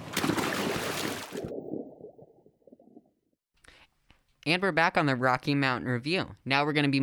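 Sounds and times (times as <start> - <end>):
water splash from cannonball into hot tub: 0.0 - 3.0
hot tub bubbles: 0.0 - 3.1
hot tub water sloshing and gurgling: 0.0 - 3.4
speech: 4.4 - 7.0.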